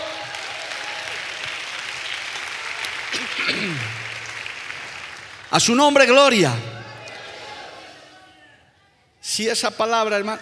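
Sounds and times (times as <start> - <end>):
large crowd applauding: 0.0 - 8.0
speech: 3.4 - 4.0, 5.5 - 6.8, 9.4 - 10.3.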